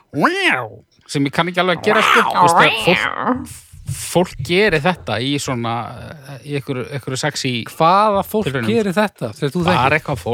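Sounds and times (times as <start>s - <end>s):
person imitating a cat with a drawn-out meow: 0.1s - 0.8s, 1.7s - 3.6s
speech: 0.1s - 10.3s.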